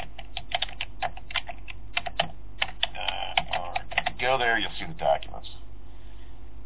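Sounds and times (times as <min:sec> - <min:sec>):
typing on a computer keyboard: 0:00.0 - 0:04.2
speech: 0:04.2 - 0:05.6.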